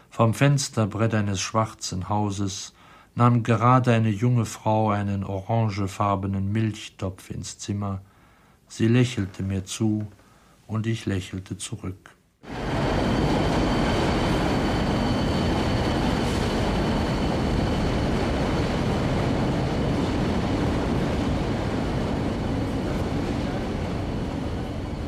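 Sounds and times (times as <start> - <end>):
speech: 0.2 - 8.1, 8.7 - 12.6
rumble of trains in an old large dark railway station in Ireland: 12.4 - 25.0.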